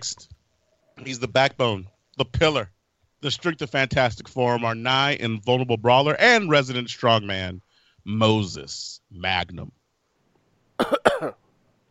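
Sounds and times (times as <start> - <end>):
speech: 1.0 - 9.8, 10.8 - 11.4
harsh double cough: 10.8 - 11.4.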